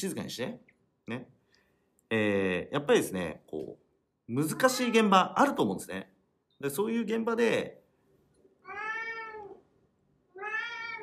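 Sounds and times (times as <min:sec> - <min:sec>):
speech: 0:00.0 - 0:01.4, 0:02.1 - 0:07.8
company's cat meowing: 0:04.4 - 0:05.3, 0:08.6 - 0:09.6, 0:10.3 - 0:11.0.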